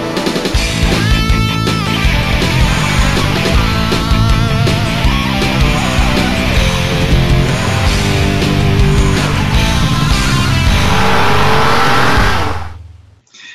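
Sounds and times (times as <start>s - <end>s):
video game race car engine revving: 0.1s - 13.1s.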